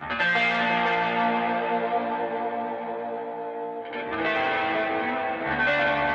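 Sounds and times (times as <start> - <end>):
guitar played through a Space Echo tape echo effect: 0.0 - 6.1.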